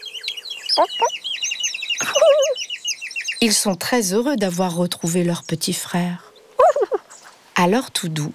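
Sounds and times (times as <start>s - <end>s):
crowd of chicks peeping in high thin chirps: 0.5s - 1.4s, 2.0s - 2.7s
hen clucking in short bursts: 0.7s - 1.1s, 2.0s - 2.6s, 6.6s - 7.1s
speech: 0.8s - 1.3s, 3.4s - 6.3s, 7.6s - 8.3s.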